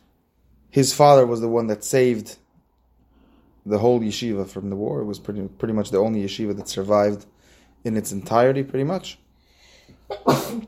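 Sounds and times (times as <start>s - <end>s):
speech: 0.7s - 2.4s, 3.7s - 9.2s, 10.1s - 10.6s
person sneezing: 10.0s - 10.6s.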